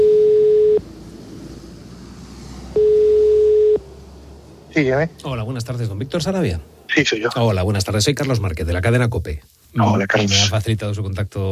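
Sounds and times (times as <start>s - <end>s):
telephone ringing tone over a line: 0.0s - 0.8s, 2.8s - 3.8s
speech: 4.8s - 11.5s
constant hiss of noise: 4.9s - 11.5s.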